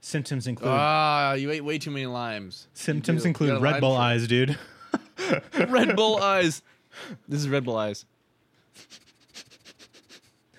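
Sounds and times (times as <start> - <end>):
speech: 0.0 - 8.1, 8.8 - 9.1
laughter: 4.4 - 6.6
person sniffing: 8.7 - 10.5.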